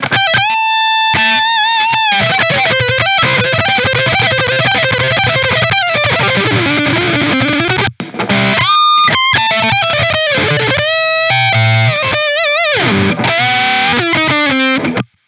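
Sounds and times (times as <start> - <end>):
guitar solo: 0.0 - 15.0.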